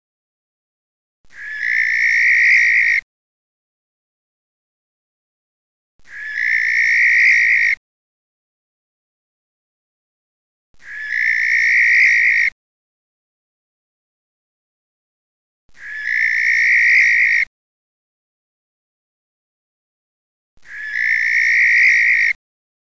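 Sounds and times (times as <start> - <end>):
male barn owl harsh breathy screech: 1.3 - 3.0, 6.1 - 7.8, 10.8 - 12.5, 15.8 - 17.5, 20.6 - 22.4.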